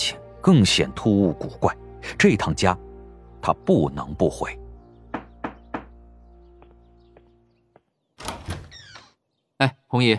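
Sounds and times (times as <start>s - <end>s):
speech: 0.4s - 2.8s, 3.4s - 4.6s, 9.6s - 10.1s
knocking on a house door: 5.1s - 6.0s.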